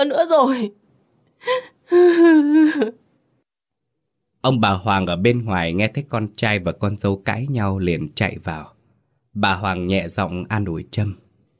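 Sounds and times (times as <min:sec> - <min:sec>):
speech: 0:00.0 - 0:00.8, 0:01.4 - 0:03.0, 0:04.4 - 0:08.8, 0:09.4 - 0:11.2
woman bursting into tears during a marital argument: 0:01.4 - 0:02.9.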